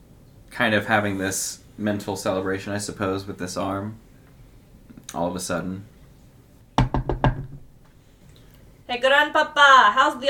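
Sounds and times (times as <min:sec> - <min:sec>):
speech: 0:00.6 - 0:04.1, 0:05.1 - 0:05.9, 0:08.9 - 0:10.2
knocking on a shed door: 0:06.8 - 0:07.8.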